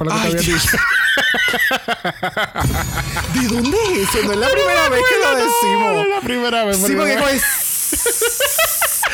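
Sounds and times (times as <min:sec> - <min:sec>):
speech: 0:00.0 - 0:08.5
laughter: 0:00.2 - 0:09.1
person imitating a snake with a steady hissing breath: 0:07.3 - 0:09.1.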